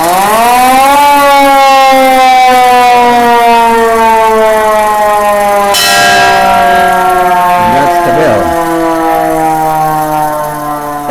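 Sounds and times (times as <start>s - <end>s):
hand-cranked fire engine siren wailing: 0.0s - 11.0s
fire engine bell clanging: 5.6s - 11.0s.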